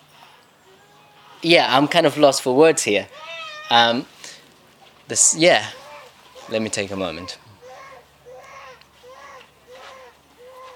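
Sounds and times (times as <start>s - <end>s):
speech: 1.4s - 4.1s, 5.1s - 5.8s, 6.5s - 7.4s
child crying: 3.1s - 3.9s, 5.6s - 10.7s.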